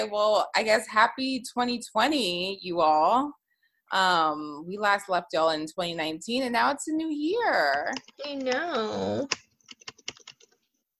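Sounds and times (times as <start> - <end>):
speech: 0.0 - 9.4
typing on a computer keyboard: 7.9 - 8.6, 9.3 - 10.6.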